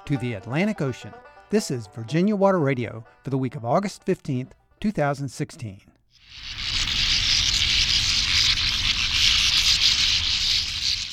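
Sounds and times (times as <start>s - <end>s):
speech: 0.1s - 6.5s
colony of bank swallows calling: 6.2s - 11.1s.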